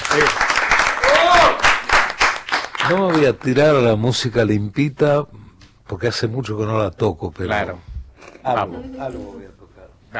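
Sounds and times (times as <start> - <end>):
audience applause for a musician at a live music gathering: 0.0 - 4.0
speech: 2.9 - 10.1.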